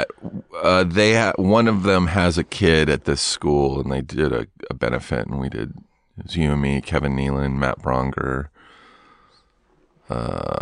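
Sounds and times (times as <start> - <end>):
speech: 0.0 - 8.5, 10.1 - 10.6
loud rough burp from person drinking water: 10.1 - 10.6.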